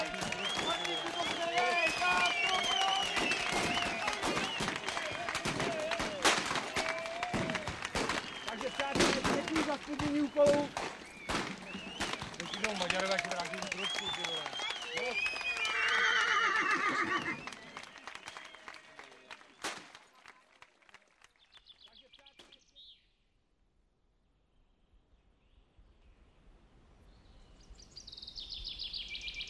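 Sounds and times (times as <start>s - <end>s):
whistles in a stadium crowd: 0.0s - 16.0s, 17.0s - 19.8s
horse hooves pounding in a gallop: 0.0s - 17.9s
large stadium crowd roaring and cheering: 0.0s - 19.4s
scattered clapping in a stadium crowd: 0.0s - 22.6s
horses neighing loudly: 15.5s - 17.5s.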